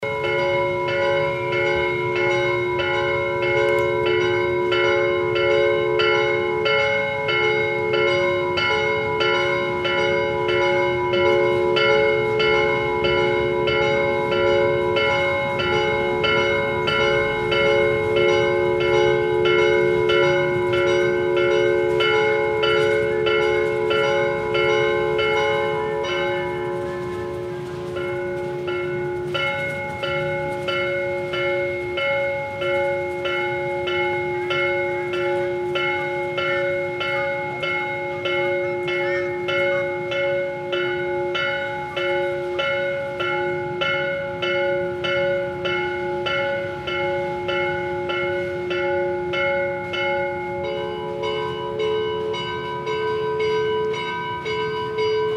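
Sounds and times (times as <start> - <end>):
cathedral bells ringing in Ayaviri: 0.0 - 55.3.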